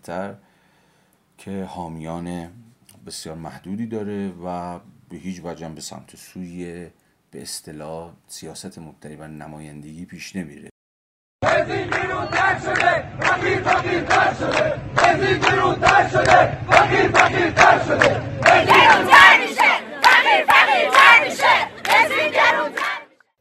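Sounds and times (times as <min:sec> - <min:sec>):
speech: 0:00.0 - 0:00.5, 0:01.4 - 0:10.7, 0:11.5 - 0:19.3
large protest crowd chanting a slogan in unison: 0:11.4 - 0:23.3.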